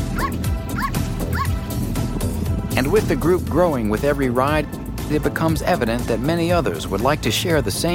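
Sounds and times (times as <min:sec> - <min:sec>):
dogs barking and yipping at a biker hangout: 0:00.1 - 0:01.6
speech: 0:02.9 - 0:07.9.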